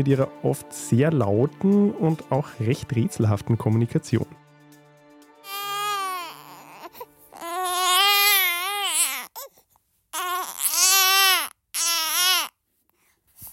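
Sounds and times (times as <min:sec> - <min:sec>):
speech: 0:00.0 - 0:04.4
five-week-old baby crying: 0:05.4 - 0:12.6.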